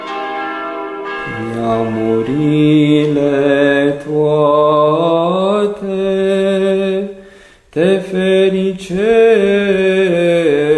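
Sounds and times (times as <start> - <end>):
monastery church bells ringing: 0.0 - 5.6
speech: 1.2 - 7.1, 7.8 - 10.7.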